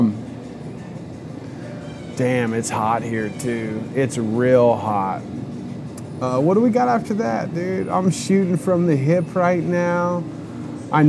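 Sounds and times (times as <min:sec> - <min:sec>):
motorcycle engines rumbling: 0:00.0 - 0:11.0
speech: 0:02.2 - 0:05.4, 0:06.2 - 0:11.0.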